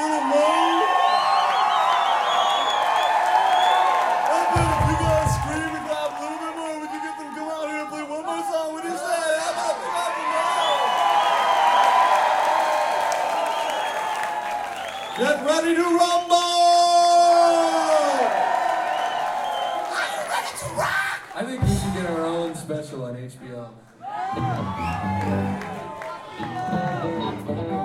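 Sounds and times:
roar of applause: 0.0s - 7.9s, 9.9s - 16.1s, 17.5s - 22.6s, 24.4s - 27.2s
shouts and whoops: 0.0s - 21.4s, 24.0s - 27.8s
large crowd screaming and cheering for an encore: 0.0s - 22.7s, 24.0s - 27.8s.

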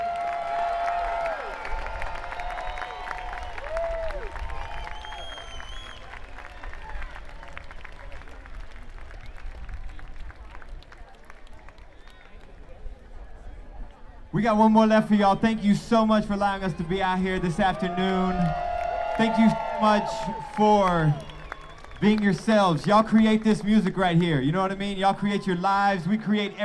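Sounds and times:
crowd applauding and cheering at an outdoor afternoon concert in San Francisco: 0.0s - 12.4s, 17.4s - 25.8s
whistles from crowd at an outdoor concert: 2.2s - 6.2s, 19.2s - 22.0s
speech: 14.4s - 18.6s, 19.2s - 21.3s, 22.0s - 26.6s.

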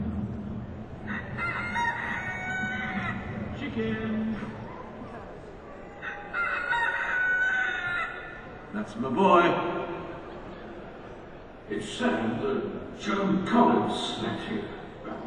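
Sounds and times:
rooster crowing: 1.0s - 3.5s, 6.0s - 8.5s
speech: 3.8s - 4.5s, 8.7s - 10.0s, 11.7s - 14.7s.

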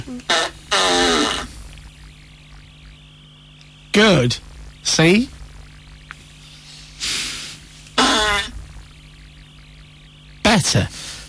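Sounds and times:
loud drawn-out flappy fart noises: 0.0s - 1.8s, 7.9s - 8.6s
speech: 0.1s - 1.3s, 4.0s - 5.4s, 10.6s - 11.2s.

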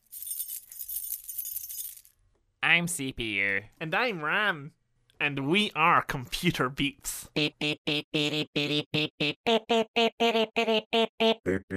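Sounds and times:
keys jangling: 0.0s - 2.2s
speech: 2.6s - 11.7s.

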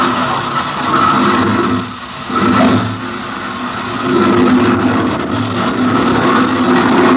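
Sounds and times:
propeller plane engine started by a hand-spun propeller roaring: 0.0s - 7.1s.

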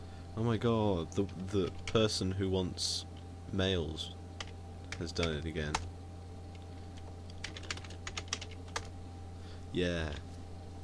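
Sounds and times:
steady low electrical hum: 0.0s - 10.8s
speech: 0.4s - 4.2s, 5.0s - 5.9s, 9.7s - 10.3s
typing on a computer keyboard: 7.4s - 8.9s.

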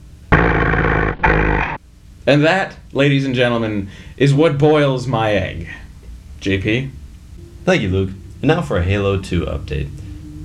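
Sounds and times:
shark roaring in a film: 0.3s - 1.8s, 7.4s - 10.4s
speech: 2.3s - 5.8s, 6.4s - 7.0s, 7.6s - 10.4s.

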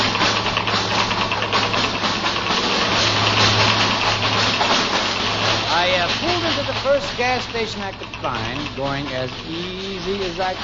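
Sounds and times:
faint rhythmic knock in small car engine: 0.0s - 10.6s
speech: 7.1s - 10.6s.

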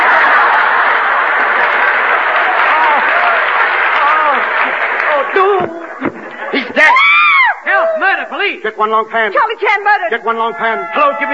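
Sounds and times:
applause from many hands clapping: 0.0s - 6.0s
laughter: 0.0s - 7.6s
speech: 8.6s - 11.3s.

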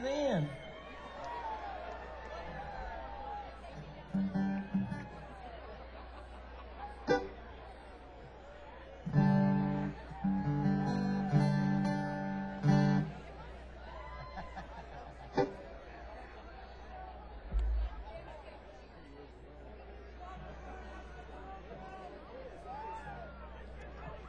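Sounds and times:
large outdoor crowd murmur: 0.0s - 24.2s
scattered laughter: 5.6s - 7.5s, 14.1s - 15.7s.

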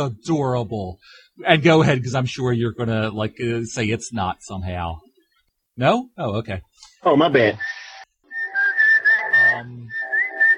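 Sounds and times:
speech: 0.0s - 5.0s, 5.8s - 7.8s, 9.6s - 10.0s
person whistling a wavering sliding tune: 7.6s - 10.5s.

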